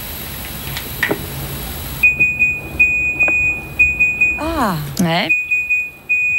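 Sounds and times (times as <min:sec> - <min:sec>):
Nokia ringtone Morse-style message in high electronic beeps: 0:02.0 - 0:04.4, 0:05.3 - 0:06.3
speech: 0:04.6 - 0:05.4.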